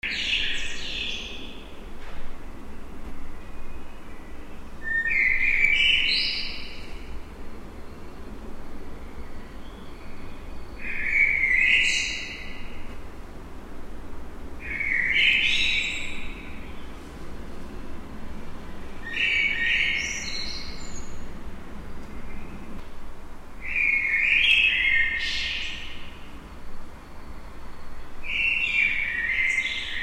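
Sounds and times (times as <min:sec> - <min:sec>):
blackbird singing in a courtyard: 0:00.0 - 0:01.7, 0:03.3 - 0:07.2, 0:07.9 - 0:12.8, 0:14.6 - 0:16.9, 0:19.0 - 0:21.3, 0:23.6 - 0:26.3, 0:27.1 - 0:30.0.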